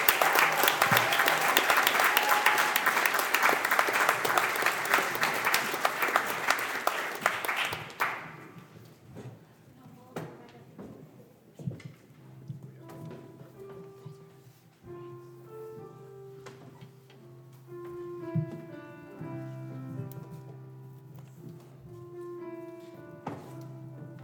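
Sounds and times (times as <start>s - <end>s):
audience clapping: 0.0s - 8.5s.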